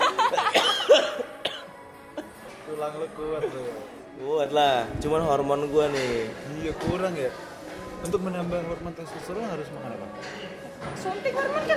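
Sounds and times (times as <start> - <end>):
laughter: 0.0 - 1.3
person coughing: 0.5 - 1.7
speech: 2.8 - 11.7.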